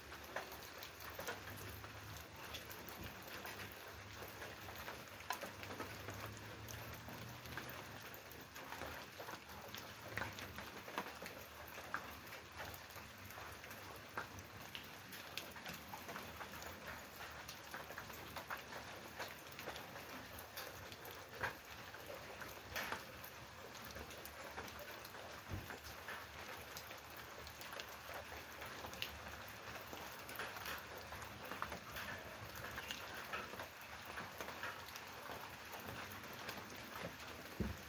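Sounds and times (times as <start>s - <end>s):
rain in the countryside: 0.0s - 37.8s.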